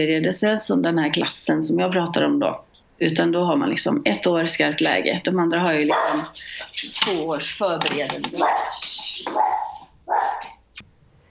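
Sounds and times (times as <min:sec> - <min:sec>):
speech: 0:00.0 - 0:09.6
dog barking: 0:05.8 - 0:06.4, 0:08.3 - 0:10.6.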